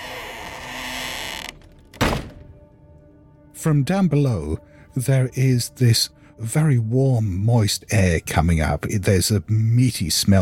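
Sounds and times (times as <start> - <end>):
wooden trapdoor creaking open: 0.0 - 2.6
wooden trapdoor slamming shut with a heavy thud: 1.7 - 2.6
speech: 3.6 - 10.4.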